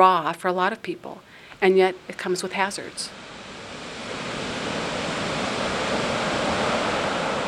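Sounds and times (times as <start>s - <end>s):
speech: 0.0s - 3.3s
ocean surf roaring near a pier before a storm in light drizzle: 2.0s - 7.4s.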